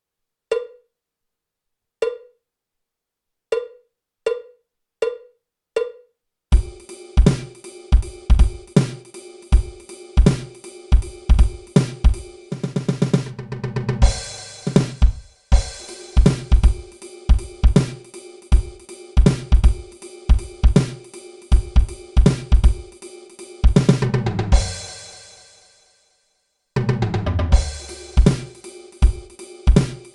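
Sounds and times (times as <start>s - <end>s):
slow syncopated drum kit solo: 6.5s - 25.7s, 26.8s - 30.1s.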